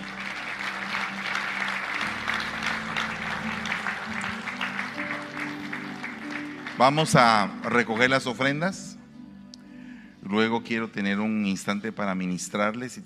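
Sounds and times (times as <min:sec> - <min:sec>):
audience applause: 0:00.0 - 0:08.3
speech: 0:06.8 - 0:08.9, 0:10.3 - 0:13.0.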